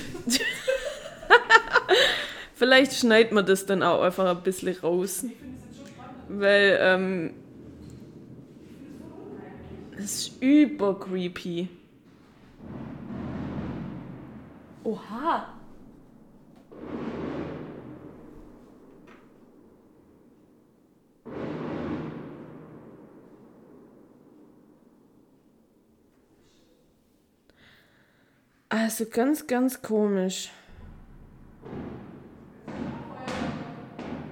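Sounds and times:
laughter: 0.0 - 2.6
fireworks exploding outside: 0.0 - 27.8, 30.7 - 34.3
speech: 2.6 - 5.5, 6.3 - 7.4, 10.0 - 11.8, 14.8 - 15.6, 28.7 - 30.6.

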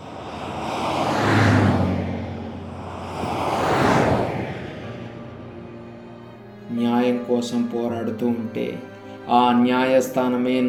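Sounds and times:
vehicle engines setting off to move a prisoner: 0.0 - 6.6
speech: 7.4 - 10.6.

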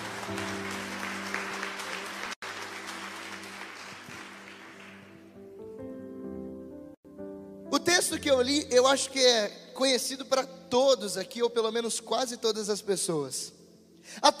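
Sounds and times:
audience applauding: 0.0 - 5.5
speech: 0.3 - 0.6, 7.8 - 14.3.

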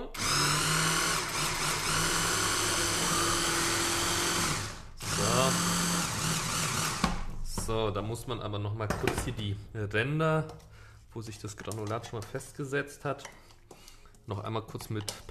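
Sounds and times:
kitchen blender mixing a spread: 0.0 - 7.3
speech: 7.7 - 13.4, 14.3 - 15.2.

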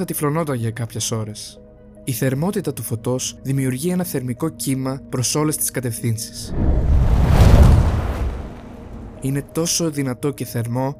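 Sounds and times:
speech: 0.0 - 7.1, 9.2 - 10.9
atomic bomb explosion boom with heavy low rumble: 6.5 - 9.6.

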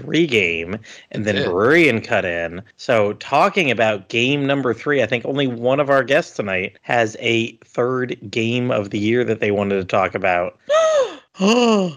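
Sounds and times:
speech: 0.0 - 11.9
person gasping in surprise: 10.6 - 11.9.

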